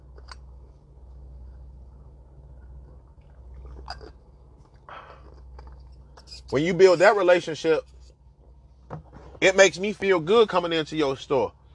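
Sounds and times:
low electrical hum: 0.0s - 11.7s
person sipping water: 2.7s - 6.4s
gulp: 3.5s - 4.2s
speech: 6.5s - 7.9s, 9.4s - 11.6s.

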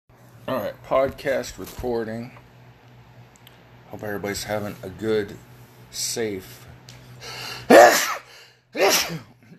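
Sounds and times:
speech: 0.5s - 2.4s, 3.9s - 6.6s, 8.9s - 9.3s
human sneeze: 7.5s - 9.4s.

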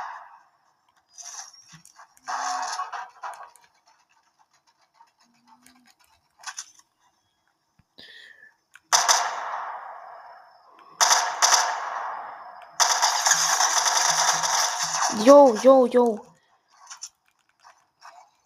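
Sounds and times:
gunfire in a shooter video game: 0.0s - 0.4s, 2.2s - 6.0s, 8.8s - 16.2s
speech: 15.2s - 16.3s.

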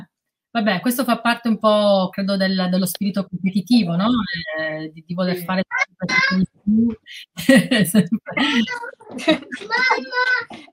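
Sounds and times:
speech: 0.6s - 10.7s
young boy babbling in short high-pitched bursts: 5.3s - 7.0s, 8.4s - 10.6s
laughter: 7.4s - 10.7s.

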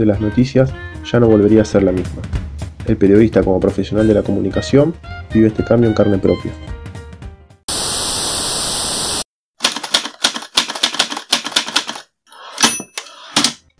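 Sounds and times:
speech: 0.0s - 6.7s
old mechanical typewriter keys clacking: 9.6s - 13.6s
mechanical typewriter bell ringing: 12.5s - 13.2s.

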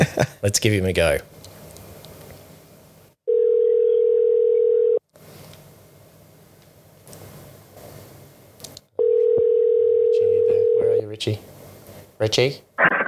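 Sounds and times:
laughter: 0.0s - 0.4s
faint phone line hiss: 0.0s - 3.2s, 5.1s - 8.9s, 11.2s - 12.8s
speech: 0.2s - 1.4s, 11.2s - 11.5s, 12.2s - 12.9s
rustling: 1.2s - 3.2s, 5.1s - 8.8s, 11.4s - 12.2s
phone's electronic ringing tone: 3.3s - 5.0s, 9.0s - 11.0s.

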